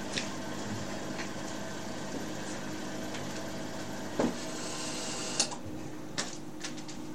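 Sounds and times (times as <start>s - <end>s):
heater whirring hum: 0.0s - 7.1s.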